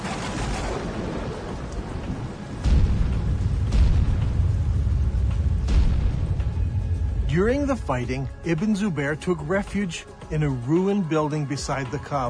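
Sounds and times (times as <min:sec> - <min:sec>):
deep roll of thunder rumbling with sharper cracks: 0:00.0 - 0:09.2
steady rain hissing in a storm: 0:00.0 - 0:12.2
speech: 0:07.4 - 0:12.2.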